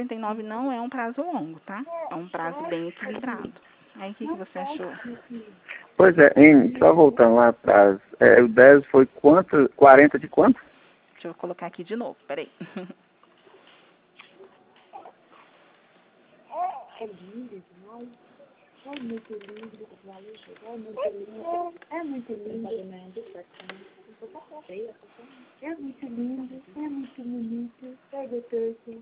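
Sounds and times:
speech: 0:00.0 - 0:13.1, 0:17.0 - 0:18.2, 0:18.8 - 0:29.0
baby babbling and cooing: 0:01.8 - 0:03.1, 0:14.9 - 0:15.2, 0:16.5 - 0:17.3, 0:20.6 - 0:23.4, 0:24.2 - 0:25.0, 0:25.9 - 0:28.7.

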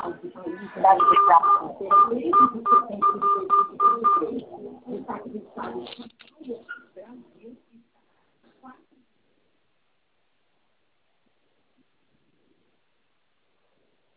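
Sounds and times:
people talking: 0:00.0 - 0:09.0
telephone keypad tones keying an ID number into an automated bank phone line: 0:01.0 - 0:04.4.

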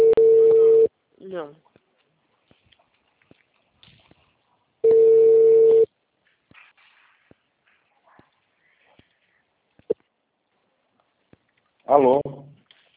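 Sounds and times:
steady telephone tone after a dropped call: 0:00.0 - 0:00.9, 0:04.8 - 0:05.9
brief soft rustles on the telephone line: 0:01.6 - 0:04.8, 0:06.1 - 0:11.8
speech: 0:11.9 - 0:12.3.

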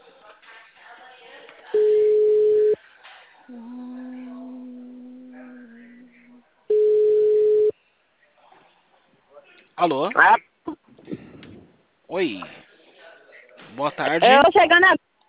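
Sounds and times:
telephone ringing tone while waiting for an answer: 0:01.8 - 0:02.8, 0:06.7 - 0:07.7
speech: 0:09.8 - 0:10.5, 0:12.2 - 0:12.6, 0:13.8 - 0:15.0.

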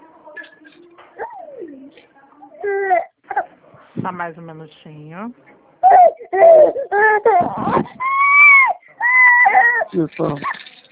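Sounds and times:
baby crying loudly: 0:02.6 - 0:03.5, 0:05.8 - 0:10.0
speech: 0:04.1 - 0:05.5, 0:06.6 - 0:08.3, 0:09.9 - 0:10.6.

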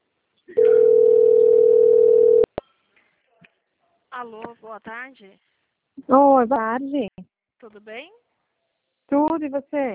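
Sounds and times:
telephone ringing tone while a call is placed: 0:00.6 - 0:02.5
speech: 0:04.2 - 0:08.2, 0:09.1 - 0:09.9.

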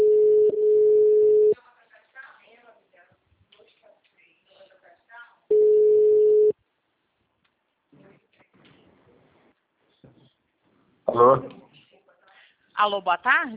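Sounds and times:
telephone ringback tone on a call being placed back after a dropped line: 0:00.0 - 0:01.6, 0:05.5 - 0:06.5
speech: 0:12.8 - 0:13.5.

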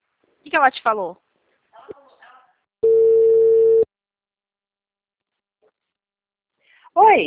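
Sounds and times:
speech: 0:00.4 - 0:01.2, 0:07.0 - 0:07.2
telephone busy tone after a phone call drops: 0:02.8 - 0:03.9.

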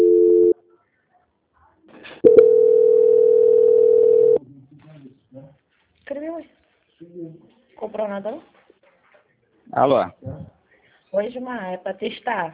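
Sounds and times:
telephone call transfer tones: 0:00.0 - 0:00.5, 0:02.2 - 0:04.4
speech: 0:07.2 - 0:08.5, 0:09.8 - 0:10.3, 0:11.1 - 0:12.5.

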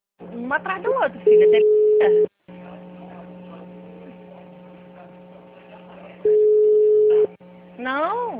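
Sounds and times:
speech: 0:00.5 - 0:02.3, 0:07.8 - 0:08.3
telephone line tone while placing a call: 0:01.3 - 0:02.3, 0:06.2 - 0:07.3.

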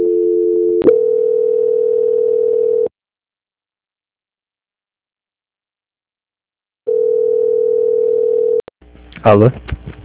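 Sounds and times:
telephone tone during a call transfer: 0:00.0 - 0:02.9, 0:06.9 - 0:08.6
speech: 0:09.2 - 0:10.0.

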